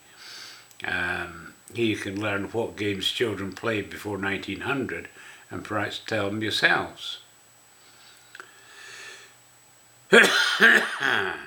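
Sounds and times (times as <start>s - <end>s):
speech: 0.8s - 7.2s, 10.1s - 11.4s
raspy phlegmy smoker's cough: 10.1s - 11.4s
throat clearing: 10.1s - 11.4s.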